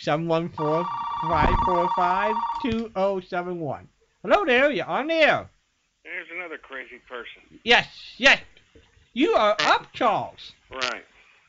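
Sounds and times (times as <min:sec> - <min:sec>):
speech: 0:00.0 - 0:08.5, 0:09.2 - 0:11.1
telephone ringing with bright electronic tone: 0:00.6 - 0:02.7.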